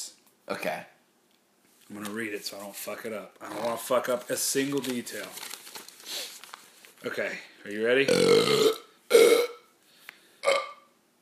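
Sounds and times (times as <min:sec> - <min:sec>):
speech: 0:00.5 - 0:01.0, 0:01.9 - 0:06.3, 0:07.0 - 0:08.8
loud strained gulping burps: 0:08.1 - 0:09.7, 0:10.4 - 0:10.9.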